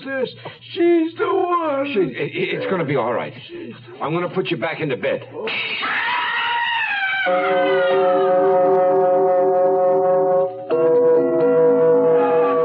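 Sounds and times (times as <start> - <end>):
speech: 0.2 - 6.0, 7.2 - 8.6
ambulance siren wailing: 6.9 - 12.6.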